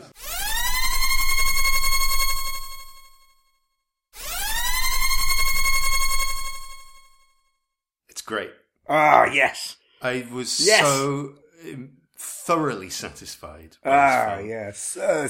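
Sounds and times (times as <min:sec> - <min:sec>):
spoiler klaxon siren sound effect: 0:00.0 - 0:03.2, 0:04.2 - 0:07.2
speech: 0:08.3 - 0:15.2.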